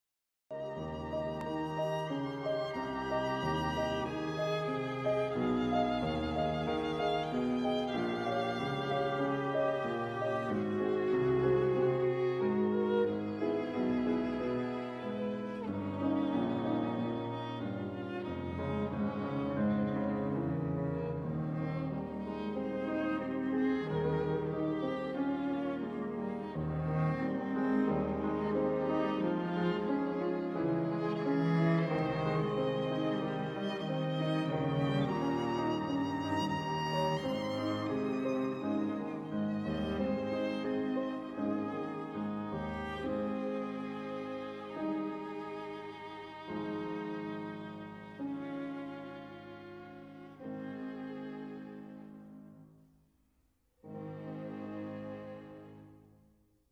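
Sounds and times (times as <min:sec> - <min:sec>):
piano trio movement: 0:00.5 - 0:52.6.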